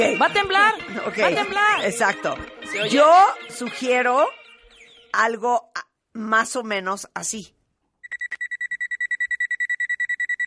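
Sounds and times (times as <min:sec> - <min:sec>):
speech: 0:00.0 - 0:04.4, 0:05.1 - 0:07.6
rapid short electronic beeps: 0:08.0 - 0:10.4.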